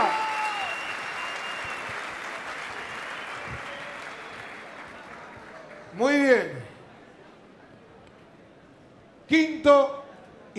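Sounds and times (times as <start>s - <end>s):
large audience applauding loudly: 0.0s - 6.3s
speech: 6.0s - 6.6s.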